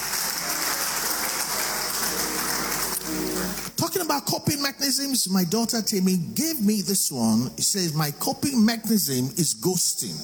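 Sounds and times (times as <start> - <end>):
crowd applauding: 0.0 - 3.8
speech: 3.9 - 10.2.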